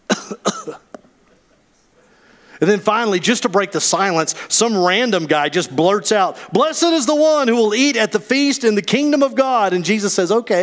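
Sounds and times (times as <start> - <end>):
man coughing: 0.1 - 0.9
speech: 2.6 - 10.6.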